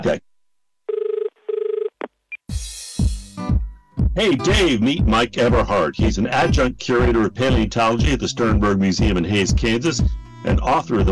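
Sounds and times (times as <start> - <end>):
speech: 0.0 - 0.3, 4.2 - 11.1
novelty phone ringing: 0.9 - 2.0.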